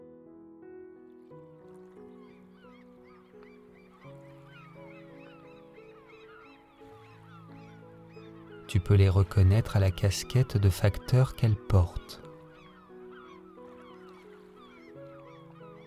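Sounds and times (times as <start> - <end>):
flock of seagulls calling: 1.1 - 15.8
speech: 8.7 - 12.2.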